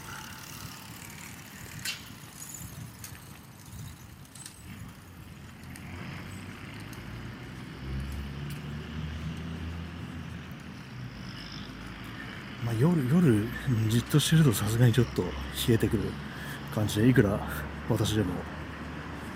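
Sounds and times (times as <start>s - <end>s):
wavering higher tone: 0.0s - 0.8s
road traffic with cars passing: 0.0s - 19.3s
speech: 12.8s - 18.6s.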